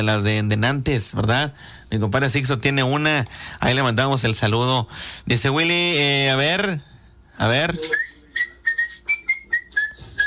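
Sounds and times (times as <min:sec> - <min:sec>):
speech: 0:00.0 - 0:08.1
person whistling a short lively tune: 0:07.8 - 0:10.2.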